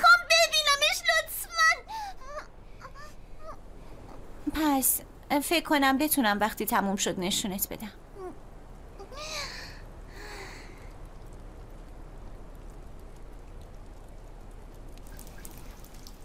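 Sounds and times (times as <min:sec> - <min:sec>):
rain starting to fall: 0:00.0 - 0:16.2
speech: 0:04.6 - 0:08.0.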